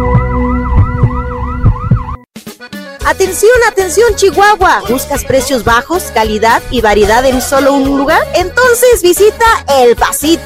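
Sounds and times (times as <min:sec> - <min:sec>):
ambulance siren wailing in up-and-down sweeps: 0:00.0 - 0:02.3
speech: 0:03.1 - 0:10.4.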